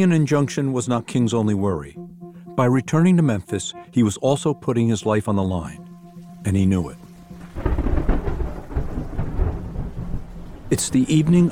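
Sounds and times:
speech: 0.0 - 7.0, 10.7 - 11.5
faint hiss of rain: 5.8 - 11.5
deep rolling thunder from a raging thunderstorm: 7.4 - 11.5.

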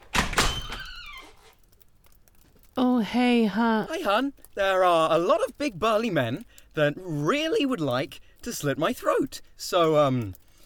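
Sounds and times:
door bursting open with heavy thuds: 0.0 - 1.5
speech: 2.8 - 10.4.

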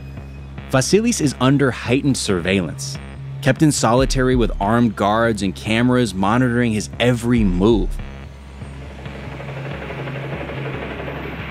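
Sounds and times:
speech: 0.7 - 8.1
helicopter rotor blades thudding while hovering above a prison roof: 5.7 - 11.4.

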